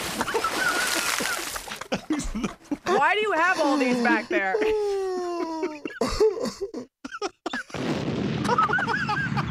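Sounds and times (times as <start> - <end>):
people laughing: 0.2 - 6.8, 8.5 - 9.4
speech: 2.4 - 4.9
cartoonish bomb explosion effect with crackling debris: 7.7 - 9.4.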